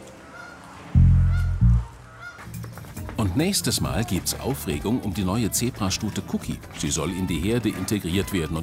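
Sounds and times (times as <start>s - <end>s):
flock of geese honking at a zoo: 0.2s - 2.5s
speech: 3.4s - 8.6s.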